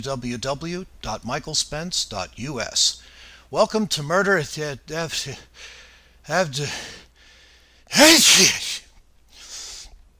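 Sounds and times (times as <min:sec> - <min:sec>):
speech: 0:00.0 - 0:07.0, 0:07.9 - 0:08.8
sneeze: 0:07.9 - 0:08.9.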